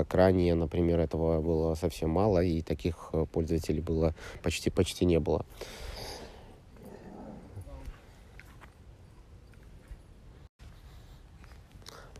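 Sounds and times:
speech: 0:00.0 - 0:05.9
steady outdoor noise: 0:00.0 - 0:12.1
dog sniffing and snorting in a small dog-walking park: 0:10.6 - 0:12.1.

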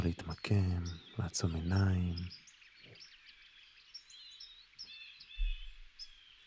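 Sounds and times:
speech: 0:00.0 - 0:02.4
many small birds chirping and twittering on a farm: 0:00.0 - 0:06.4.

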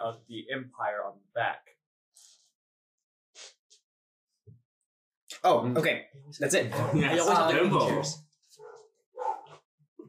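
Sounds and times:
speech: 0:00.0 - 0:01.6, 0:05.4 - 0:08.7
dog barking: 0:08.6 - 0:09.6.

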